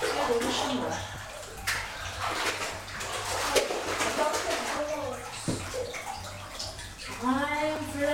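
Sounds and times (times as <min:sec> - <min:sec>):
child splashing water in a bathtub: 0:00.0 - 0:08.1
speech: 0:00.3 - 0:01.2.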